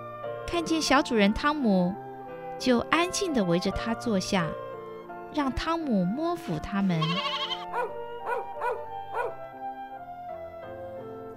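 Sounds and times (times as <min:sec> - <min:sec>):
soft sustained music: 0:00.0 - 0:11.3
speech: 0:00.5 - 0:02.0, 0:02.6 - 0:04.6, 0:05.3 - 0:07.5
sheepdog barking: 0:07.6 - 0:09.4.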